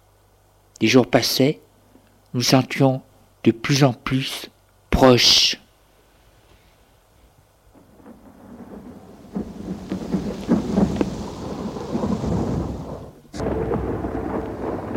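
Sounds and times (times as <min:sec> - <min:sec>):
speech: 0:00.8 - 0:01.6, 0:02.3 - 0:05.6
steady rain in a thunderstorm: 0:07.4 - 0:14.9
long deep thunder rumbling in a thunderstorm: 0:07.7 - 0:14.9.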